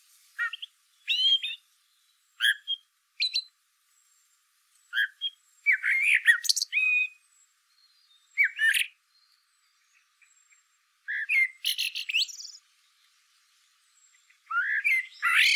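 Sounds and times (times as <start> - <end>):
Eurasian blackbird singing: 0.4 - 1.6, 4.9 - 12.6, 14.0 - 15.5.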